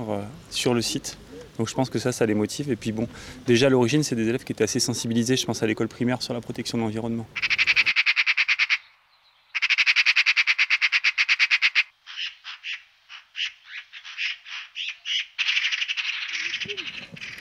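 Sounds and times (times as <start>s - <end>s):
speech: 0.0s - 7.6s
birds calling outdoors in fast rattling trills: 7.3s - 17.4s.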